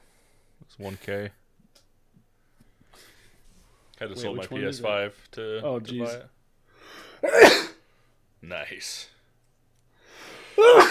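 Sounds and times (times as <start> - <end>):
speech: 0.7 - 1.4, 4.0 - 7.7, 8.4 - 9.1, 10.6 - 10.8
person sneezing: 7.2 - 7.8, 10.6 - 10.8.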